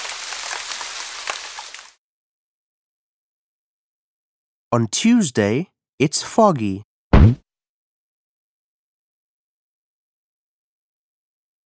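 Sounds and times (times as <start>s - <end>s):
steady rain falling with a dense hissing patter: 0.0s - 2.0s
speech: 4.7s - 7.4s.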